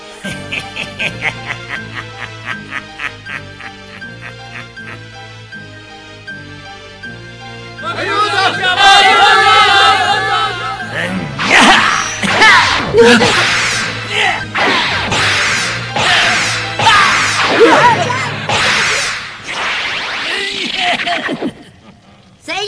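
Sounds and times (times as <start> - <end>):
laughter: 0.1 - 5.2, 8.0 - 10.8, 20.3 - 22.4
whip lashing through the air: 11.4 - 21.2
speech: 13.0 - 13.6.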